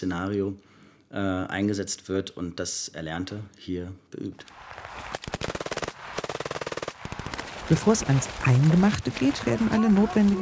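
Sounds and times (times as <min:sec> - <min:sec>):
speech: 0:00.0 - 0:05.4, 0:07.7 - 0:10.3
soldiers firing German and Dutch small arms on a military shooting range in Norway: 0:04.8 - 0:08.4.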